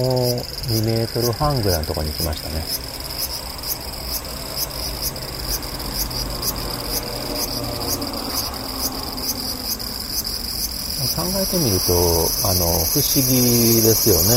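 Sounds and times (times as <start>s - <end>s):
speech: 0.0s - 3.0s, 11.4s - 14.3s
cicada buzzing: 0.0s - 14.3s.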